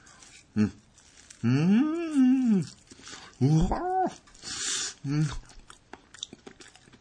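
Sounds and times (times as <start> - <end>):
chewing on a sweet, sticky food: 0.0 - 6.9
low vocal murmur: 0.6 - 0.8, 1.4 - 4.2, 5.0 - 5.5
speech: 0.6 - 0.8, 1.4 - 2.8, 3.4 - 4.3, 5.0 - 5.5.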